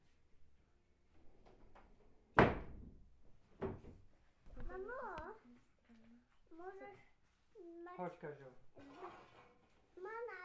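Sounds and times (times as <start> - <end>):
faint household noise: 0.0 - 10.4
door swinging shut with a loud thud: 2.4 - 3.0
speech: 6.6 - 9.3.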